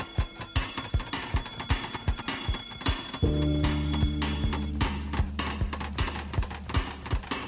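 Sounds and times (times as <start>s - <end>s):
thin high ringing: 0.0s - 5.8s
bell ringing: 0.0s - 7.3s
speech: 3.2s - 3.7s.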